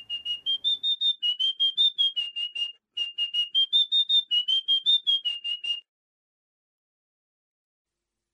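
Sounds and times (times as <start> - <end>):
small pipe whistle playing a simple tune: 0.0 - 5.8.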